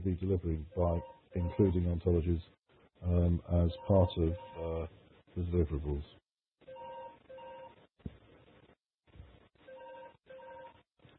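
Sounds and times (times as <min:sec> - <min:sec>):
speech: 0:00.0 - 0:06.2
phone beeping in paired tones: 0:00.7 - 0:01.8, 0:03.7 - 0:04.7, 0:06.7 - 0:07.8, 0:09.7 - 0:10.8.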